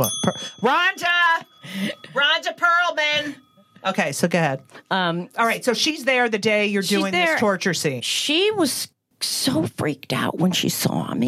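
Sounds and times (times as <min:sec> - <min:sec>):
bright bell ding: 0:00.0 - 0:04.6
speech: 0:00.0 - 0:11.2.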